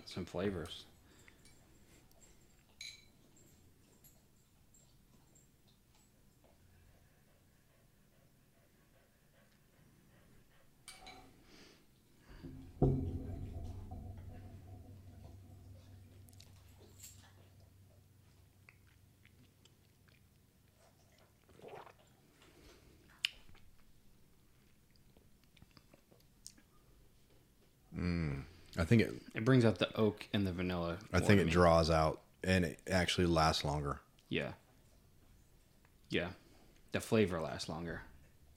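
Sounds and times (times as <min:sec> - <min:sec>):
speech: 0:00.1 - 0:00.9, 0:28.9 - 0:34.6, 0:36.1 - 0:38.1
glass clinking: 0:02.6 - 0:04.2, 0:10.9 - 0:11.3, 0:12.3 - 0:17.2.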